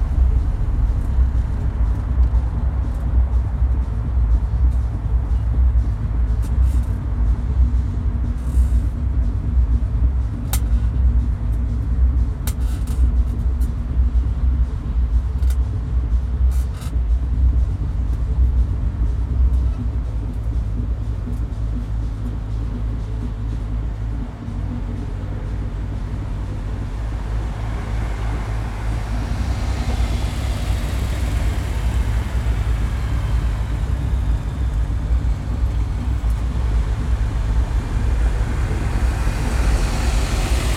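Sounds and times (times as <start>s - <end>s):
traffic and engines on a road in Marzahn, Berlin: 0.0s - 40.7s
vehicle passing on a road: 24.4s - 40.7s.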